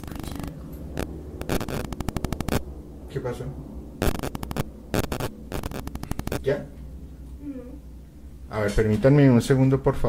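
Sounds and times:
harsh bursts of crackling static and buzzing interference: 0.0 - 7.9
steady low electrical hum: 0.0 - 10.0
speech: 3.1 - 3.7, 6.5 - 6.8, 8.5 - 10.0.

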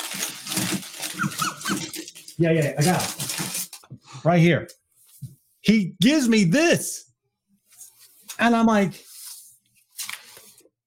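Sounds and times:
papers rustling as someone rummages for deeds: 0.0 - 3.9, 9.0 - 10.7
speech: 2.4 - 3.2, 4.2 - 4.8, 5.7 - 7.0, 8.4 - 9.0.

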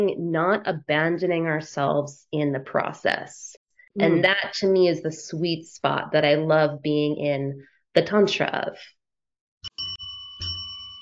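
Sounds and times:
speech: 0.0 - 9.0
small bell ringing: 9.6 - 11.0.

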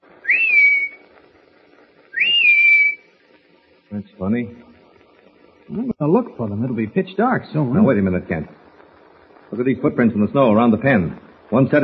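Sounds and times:
person whistling a signal call in snow: 0.2 - 1.0, 2.1 - 3.1
speech: 3.9 - 4.7, 5.7 - 8.6, 9.5 - 11.8.

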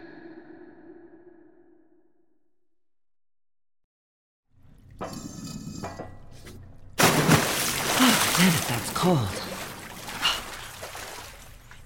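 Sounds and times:
water trickling in a flooded tunnel: 6.2 - 11.8
water splashing: 7.0 - 11.8
speech: 8.7 - 9.5.

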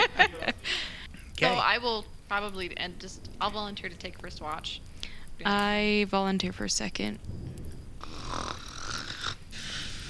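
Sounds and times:
laughter: 0.0 - 1.6
speech: 1.7 - 7.5
loud raspy snoring: 8.0 - 10.0.

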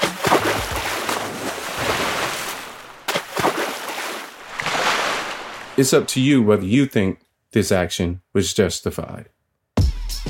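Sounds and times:
e-scooter splashing into river water: 0.0 - 5.8
speech: 5.8 - 9.4.

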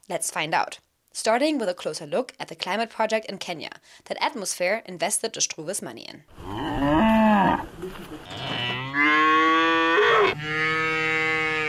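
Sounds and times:
speech: 0.1 - 8.5
cows mooing: 6.4 - 11.6.

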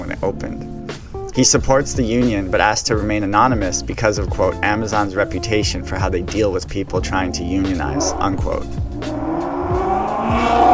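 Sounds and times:
speech: 0.2 - 0.7, 1.4 - 8.8
unmuffled motorcycle engine roaring as it passes: 8.0 - 10.7.

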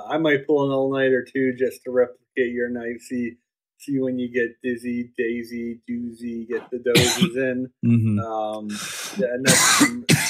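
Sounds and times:
speech: 0.1 - 10.2
short voiced hum or throat sound: 6.5 - 10.2
harsh coughs: 6.9 - 7.5, 9.2 - 10.2.

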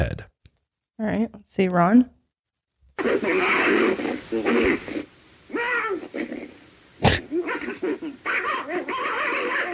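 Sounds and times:
speech: 1.0 - 2.2, 3.0 - 6.4, 7.0 - 9.7
dog yelping: 3.0 - 4.8, 7.1 - 9.7
snarling, growling dogs fighting and barking: 3.0 - 9.7.

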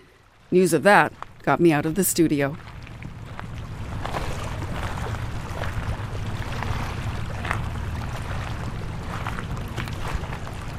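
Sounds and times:
water washing on a beach at low tide: 0.0 - 10.7
speech: 0.5 - 2.7
low rumble: 1.1 - 10.7
small splashes: 2.6 - 10.7.

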